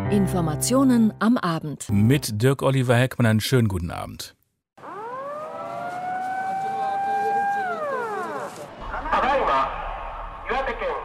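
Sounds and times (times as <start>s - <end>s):
speech: 0.1s - 4.4s
civil defense memorial siren wailing in Japan: 4.8s - 9.7s.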